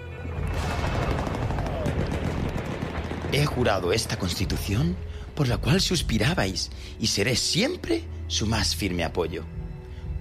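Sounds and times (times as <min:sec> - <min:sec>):
continuous gunfire of enemy weapons: 0:00.4 - 0:04.5
speech: 0:03.3 - 0:09.6.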